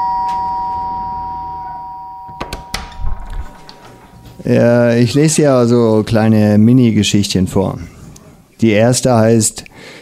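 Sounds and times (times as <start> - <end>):
electronic doorbell ringing: 0.0 - 4.4
door being handled with clunks: 2.3 - 4.0
speech: 4.4 - 8.0, 8.6 - 10.0.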